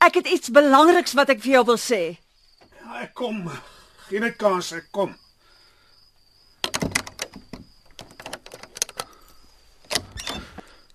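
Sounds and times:
speech: 0.0s - 2.2s, 2.9s - 5.2s
door clacking as it swings: 6.6s - 9.2s
door unlatching with sharp clicks and rattling knocks: 6.6s - 9.2s, 9.8s - 10.7s
door creaking: 6.6s - 10.8s.

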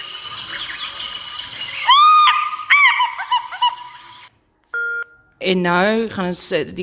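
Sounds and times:
African fish eagle giving a ringing series of yelps: 1.6s - 3.9s
speech: 5.4s - 6.8s.

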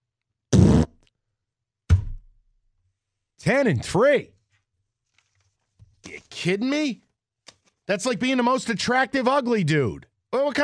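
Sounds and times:
fart noises: 0.5s - 1.1s
speech: 3.4s - 4.4s, 6.3s - 7.0s, 7.9s - 10.6s.

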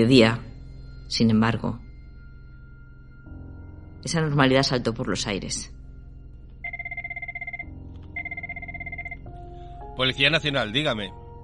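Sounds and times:
speech: 0.0s - 0.4s, 1.1s - 1.8s, 4.0s - 5.8s, 10.0s - 11.2s
old-style telephone ringing: 6.7s - 9.3s.

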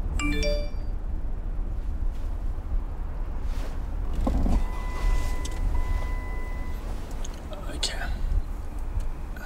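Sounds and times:
car engine and road rumble while driving: 0.0s - 9.4s
text-message notification chime with descending tones: 0.2s - 0.9s.

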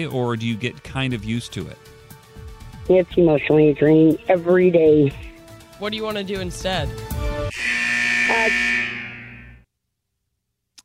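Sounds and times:
speech: 0.0s - 2.0s, 2.9s - 7.7s, 8.3s - 8.7s
loud harsh game show buzzer: 7.5s - 9.6s.

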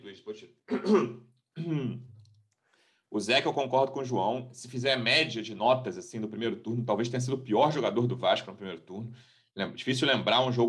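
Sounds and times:
speech: 0.2s - 2.1s, 3.1s - 10.6s
rough throaty coughs: 0.7s - 2.1s.

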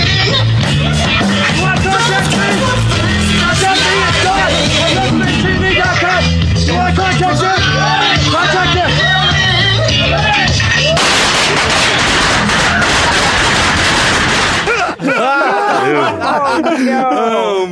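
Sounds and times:
laughter: 0.1s - 6.2s, 8.9s - 11.1s, 11.8s - 17.6s
people talking: 0.9s - 9.1s, 14.7s - 17.6s
massive explosion set off in a studio about the size of a kitchen: 10.9s - 14.7s.

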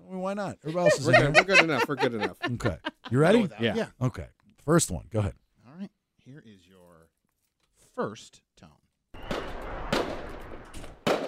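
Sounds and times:
speech: 0.2s - 6.7s, 8.0s - 8.8s
laughter: 0.7s - 3.9s
fireworks exploding: 9.2s - 11.2s.

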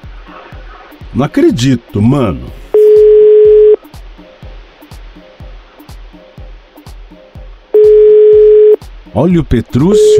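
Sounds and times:
speech: 1.2s - 2.6s, 9.2s - 10.1s
telephone busy signal on an unanswered call: 2.8s - 3.8s, 7.8s - 8.8s, 10.0s - 10.1s.

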